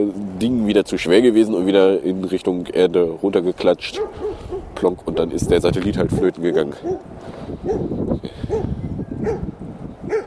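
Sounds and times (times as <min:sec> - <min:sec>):
speech: 0:00.0 - 0:08.4, 0:09.2 - 0:09.5
dog barking: 0:03.9 - 0:04.7, 0:06.2 - 0:07.9, 0:08.5 - 0:09.5, 0:10.1 - 0:10.2.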